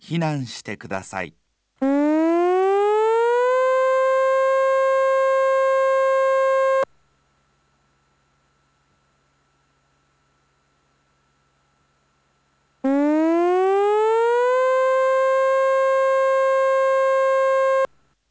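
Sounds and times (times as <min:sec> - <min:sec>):
speech: 0:00.1 - 0:01.9
tsunami warning siren wailing: 0:01.8 - 0:06.9, 0:12.8 - 0:17.9.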